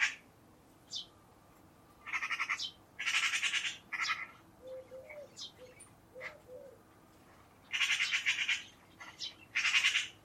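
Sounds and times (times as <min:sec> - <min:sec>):
bird higher chirp: 0:00.8 - 0:01.2, 0:02.2 - 0:06.8, 0:07.6 - 0:10.2.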